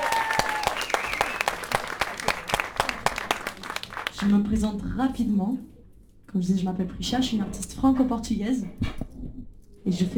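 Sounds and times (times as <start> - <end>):
modest audience applauding at a live performance: 0.0 - 4.4
speech: 4.2 - 5.7, 6.3 - 8.9, 9.9 - 10.1.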